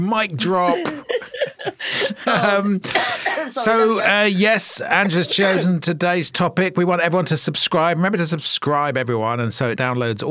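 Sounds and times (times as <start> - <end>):
speech: 0.0 - 10.3
person coughing: 0.4 - 3.9
person laughing: 0.4 - 4.2.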